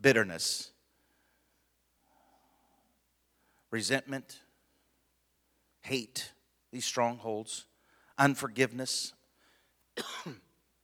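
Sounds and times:
speech: 0.0s - 0.7s, 3.7s - 4.4s, 5.8s - 9.2s, 10.0s - 10.4s
harsh cough: 10.0s - 10.6s.

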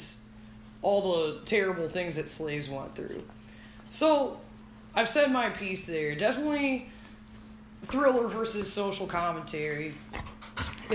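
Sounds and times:
speech: 0.8s - 7.0s, 7.8s - 10.3s
dog panting quickly and excitedly: 10.1s - 10.9s.

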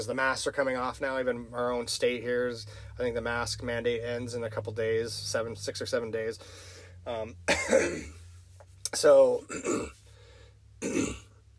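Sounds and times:
speech: 0.0s - 8.2s, 8.9s - 10.0s
low steady hum: 0.0s - 11.5s
person coughing: 7.5s - 8.2s, 9.5s - 10.0s, 10.8s - 11.3s
throat clearing: 7.5s - 8.2s, 9.5s - 10.0s, 10.8s - 11.4s.

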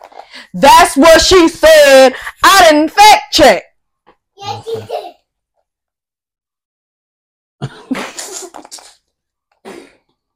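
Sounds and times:
speech: 0.5s - 3.7s
person sneezing forcefully: 7.6s - 9.0s, 9.6s - 10.1s.

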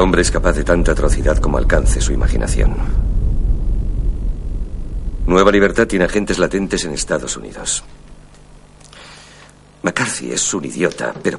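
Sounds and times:
speech: 0.0s - 3.1s, 5.3s - 8.0s, 9.8s - 11.3s
atomic explosion rumble shown on a monitor: 0.0s - 8.9s.

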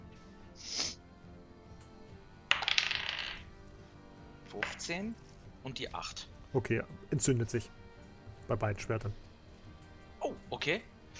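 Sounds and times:
two twenty-sided dice rolled during a tabletop role-playing game: 2.5s - 3.5s
speech: 4.6s - 7.8s, 8.5s - 9.2s, 10.5s - 11.1s.

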